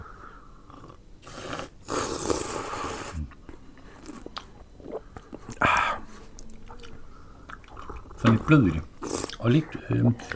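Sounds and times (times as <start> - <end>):
quiet mouth sounds: 0.6 - 10.3
slurping oolong tea from a cup: 0.7 - 3.2
speech: 8.4 - 10.3.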